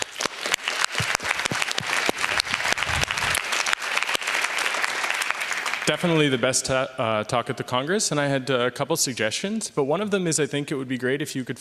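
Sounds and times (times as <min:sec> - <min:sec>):
audience applause at a conference talk: 0:00.0 - 0:06.4
speech: 0:05.9 - 0:11.5.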